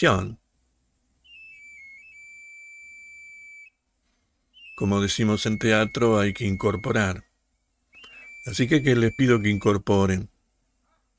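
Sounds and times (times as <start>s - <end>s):
speech: 0.0s - 0.4s, 4.8s - 7.3s, 8.4s - 10.3s
street knife sharpener's whistle: 1.2s - 3.8s, 4.5s - 7.3s, 7.9s - 9.8s.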